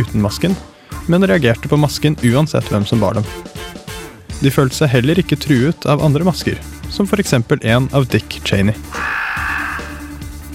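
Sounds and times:
speech: 0:00.0 - 0:03.8, 0:04.4 - 0:09.2
crow cawing: 0:08.9 - 0:10.2.

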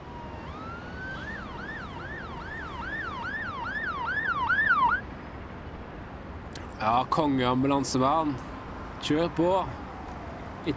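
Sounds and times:
ambulance siren wailing in a rapid yelp: 0:00.0 - 0:05.1, 0:09.0 - 0:10.7
speech: 0:06.8 - 0:09.8.

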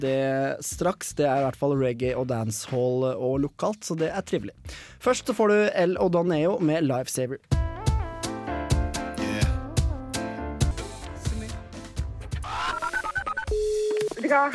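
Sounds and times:
speech: 0:00.0 - 0:07.6, 0:14.3 - 0:14.5
rhythmic music with a steady beat: 0:00.0 - 0:14.5
telephone dialing beeps of an outgoing call: 0:12.6 - 0:14.2.

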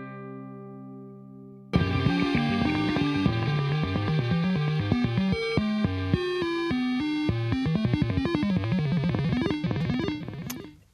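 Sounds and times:
dense distorted electronic music: 0:01.8 - 0:10.8
modem-like electronic bleeps and bloops: 0:04.6 - 0:10.8.

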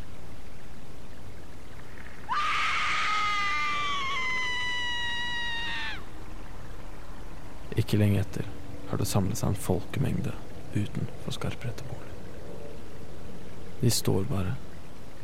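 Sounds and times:
piercing deafening scream in a street at Byneset on a rainy autumn day: 0:02.3 - 0:06.1
speech: 0:07.8 - 0:12.1, 0:13.8 - 0:14.7.

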